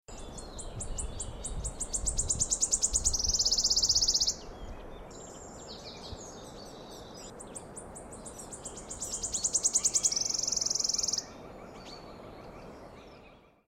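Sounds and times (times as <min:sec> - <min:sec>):
wood warbler: 0:00.1 - 0:13.6.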